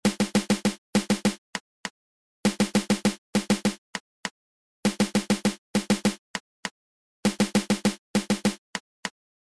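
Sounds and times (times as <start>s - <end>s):
caixa snare drum playing a fanfare beat: 0.0s - 1.4s, 2.5s - 3.8s, 4.9s - 6.2s, 7.3s - 8.6s.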